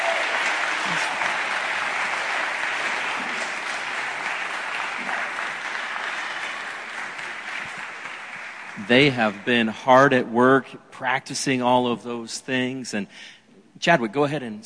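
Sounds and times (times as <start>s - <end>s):
audience applause: 0.0s - 9.8s
speech: 8.9s - 14.6s.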